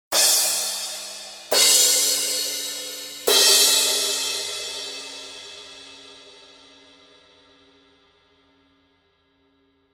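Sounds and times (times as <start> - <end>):
Paiste crash cymbals: 0.1 - 7.4.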